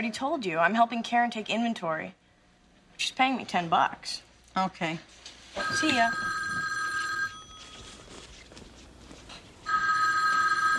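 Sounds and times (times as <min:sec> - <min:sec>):
speech: 0:00.0 - 0:02.2, 0:03.0 - 0:06.4
telephone bell ringing loudly: 0:05.6 - 0:08.0, 0:09.7 - 0:10.7.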